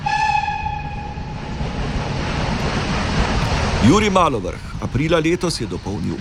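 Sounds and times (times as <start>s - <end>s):
train horn: 0.0s - 1.5s
train with rolling railway wagons rumbling past: 0.0s - 6.1s
speech: 3.8s - 6.1s.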